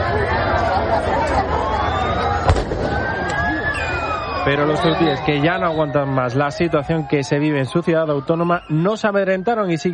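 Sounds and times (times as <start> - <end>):
crowd murmuring and shouting at the entrance of the port of Ceuta: 0.0 - 9.9
gunshot fired into the air by police: 2.4 - 3.4
speech: 4.4 - 9.9.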